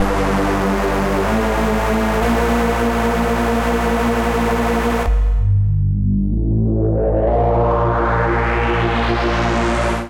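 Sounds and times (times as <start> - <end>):
bass line in G minor: 0.0 - 10.0.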